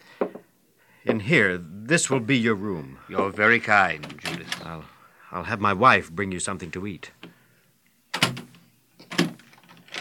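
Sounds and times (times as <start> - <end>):
faint knock: 0.2 - 0.5
speech: 1.0 - 7.2
door swinging shut: 4.0 - 4.8, 8.1 - 9.9.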